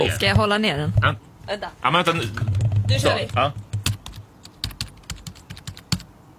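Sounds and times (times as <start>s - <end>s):
speech: 0.1s - 3.6s
crisp clicky computer keyboard typing: 2.5s - 6.1s.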